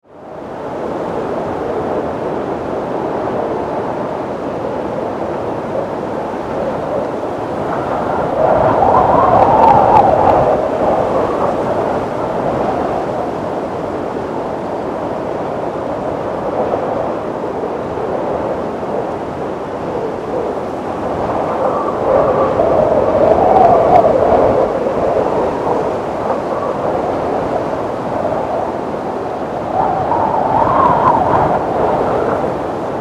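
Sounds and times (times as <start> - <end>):
storm wind: 0.0 - 32.9.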